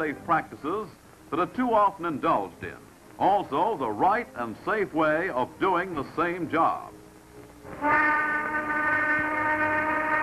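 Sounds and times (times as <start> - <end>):
speech: 0.0 - 7.0, 7.7 - 8.3
noon factory shop whistle blowing: 7.8 - 10.2.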